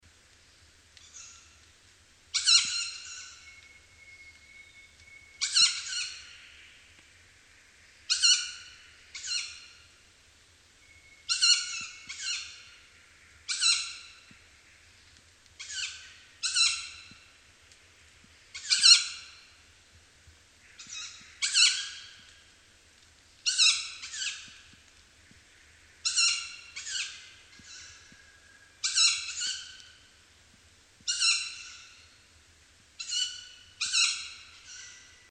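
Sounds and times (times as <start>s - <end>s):
juvenile tawny owl in Janakkala: 1.0s - 1.7s, 2.3s - 6.9s, 8.0s - 9.9s, 10.9s - 14.9s, 15.6s - 17.3s, 18.4s - 19.6s, 20.6s - 22.4s, 23.4s - 30.1s, 31.0s - 32.2s, 33.0s - 35.2s.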